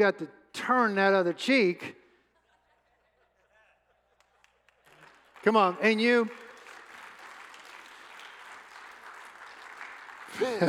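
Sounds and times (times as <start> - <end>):
speech: 0.0 - 2.0, 5.4 - 6.4, 10.4 - 10.6
laughter: 2.3 - 4.6, 10.3 - 10.6
large indoor church audience applause: 4.3 - 10.6.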